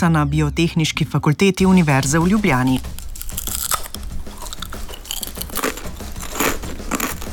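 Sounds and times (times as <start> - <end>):
speech: 0.0 - 3.5
biting and crunching crispy potato chips: 2.2 - 7.3.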